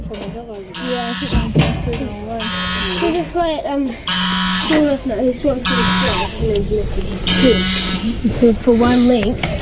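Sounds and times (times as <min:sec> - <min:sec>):
speech: 0:00.1 - 0:09.6
goose on top of a hill honking in harsh raspy bursts: 0:00.7 - 0:01.6, 0:02.3 - 0:06.5, 0:07.2 - 0:08.2.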